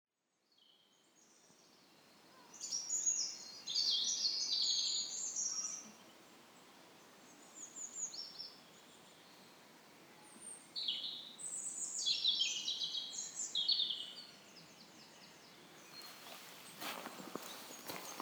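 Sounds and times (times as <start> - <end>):
peaceful forest ambience in May: 0.1 - 18.1.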